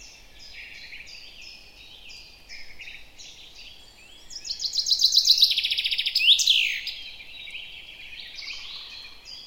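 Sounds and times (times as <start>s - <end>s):
common chaffinch Fringilla coelebs singing: 0.0s - 9.4s.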